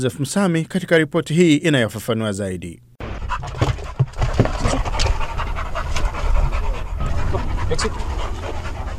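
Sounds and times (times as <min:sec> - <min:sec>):
speech: 0:00.0 - 0:03.6
trained detection dogs panting: 0:03.1 - 0:08.9.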